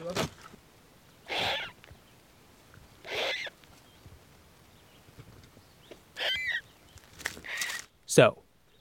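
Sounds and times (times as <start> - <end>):
turkey vulture chicks hissing: 1.2 - 1.8, 3.0 - 3.6, 5.8 - 6.7
speech: 8.2 - 8.4.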